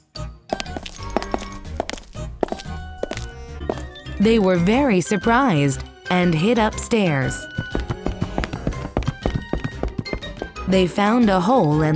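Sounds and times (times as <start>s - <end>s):
heavy footsteps thudding with hollow knocking impacts: 0.5s - 4.2s, 7.4s - 10.7s
speech: 4.2s - 7.6s, 10.7s - 11.9s.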